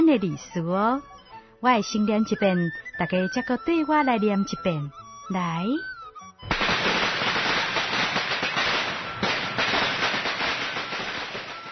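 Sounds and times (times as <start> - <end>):
speech: 0.1 - 6.6
firecrackers set off for the New Year holiday crackling: 6.4 - 11.7.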